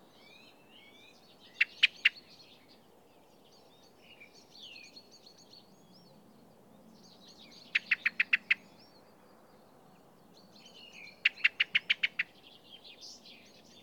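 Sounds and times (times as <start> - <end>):
low background hiss: 0.0 - 13.8
common blackbird Turdus merula giving chink calls: 7.7 - 8.7, 10.8 - 12.4.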